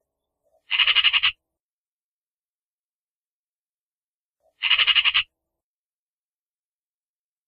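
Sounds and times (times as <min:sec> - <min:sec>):
Eurasian magpie giving harsh rapid rattling chatter: 0:00.7 - 0:01.4, 0:04.6 - 0:05.3.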